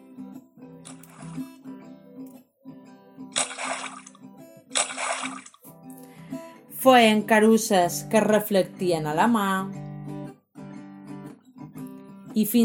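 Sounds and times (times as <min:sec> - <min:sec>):
soft music: 0:00.0 - 0:12.6
splashes of jumping into water in play: 0:00.9 - 0:01.5, 0:03.4 - 0:05.7
speech: 0:06.8 - 0:09.8, 0:12.4 - 0:12.6.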